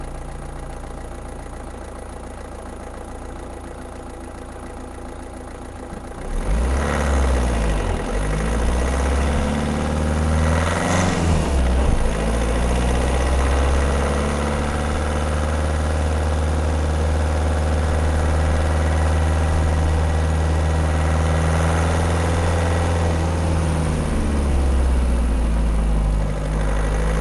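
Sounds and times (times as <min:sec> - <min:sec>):
car driving: 0:05.8 - 0:27.1.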